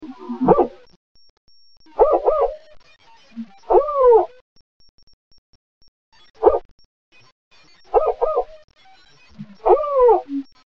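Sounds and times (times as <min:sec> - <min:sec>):
spotted owl barking calls in northwest California: 0:00.2 - 0:00.8, 0:02.0 - 0:02.6, 0:03.7 - 0:04.3, 0:07.9 - 0:08.5, 0:09.6 - 0:10.4.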